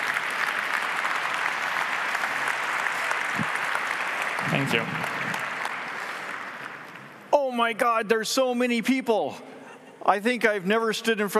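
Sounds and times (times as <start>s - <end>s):
large audience applauding in a big hall: 0.0s - 7.2s
speech: 4.4s - 5.2s, 7.6s - 11.3s.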